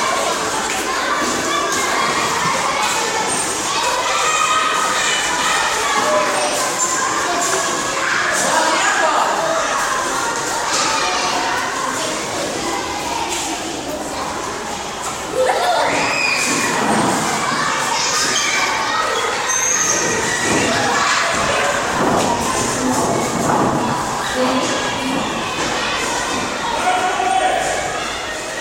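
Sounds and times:
children shouting and laughing at school recess: 0.0 - 28.5.

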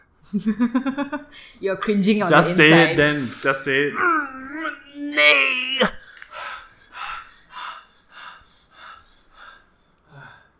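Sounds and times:
laughter: 0.3 - 1.4, 2.3 - 6.0
speech: 0.3 - 6.0
heavy panting breaths: 6.0 - 10.5.

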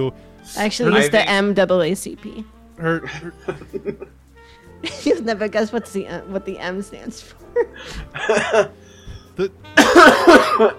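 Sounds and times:
speech: 0.0 - 4.2, 4.8 - 8.8, 9.4 - 10.7
laughter: 2.9 - 4.1, 7.6 - 8.7, 9.8 - 10.7
person coughing: 7.8 - 8.7, 9.4 - 10.7.

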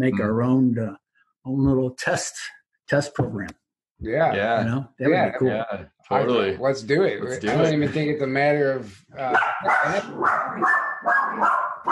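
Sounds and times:
speech: 0.0 - 11.8
dog barking with whiny yipping edge: 9.3 - 11.8.

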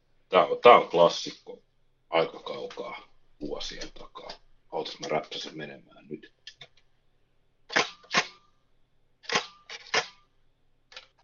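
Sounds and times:
speech: 0.3 - 6.6
mechanical shutter clicks from an old Kodak Brownie E620 box camera: 7.7 - 8.3, 9.3 - 10.2.

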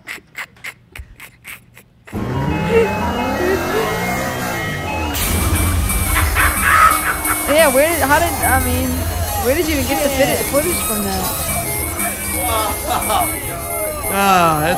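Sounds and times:
laughter: 0.1 - 14.7
engine and street noise: 2.1 - 14.7
short rhythmic bursts: 2.1 - 14.7
ice cream truck jingle with tinny melody: 2.2 - 14.7
speech: 7.6 - 11.5, 14.1 - 14.7.

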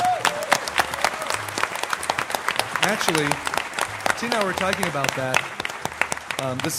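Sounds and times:
audience clapping at a fan convention: 0.0 - 6.7
speech: 2.9 - 3.5, 4.2 - 5.6, 6.4 - 6.7.

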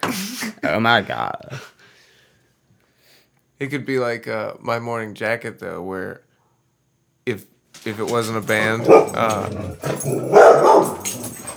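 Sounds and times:
speech: 0.1 - 1.7, 3.6 - 6.2, 7.2 - 11.2
dogs barking with whiny yips: 7.8 - 11.5.

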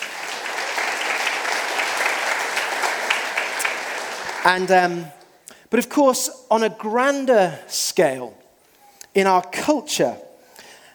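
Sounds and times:
crowd applauding: 0.0 - 4.8
speech: 4.4 - 8.4, 9.2 - 10.2.

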